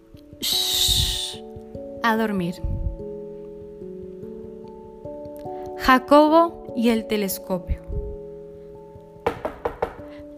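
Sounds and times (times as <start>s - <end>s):
soft sustained musical background: 0.0s - 10.3s
speech: 0.4s - 0.8s, 2.0s - 2.8s, 5.8s - 7.8s
knocking on a door: 9.2s - 10.1s.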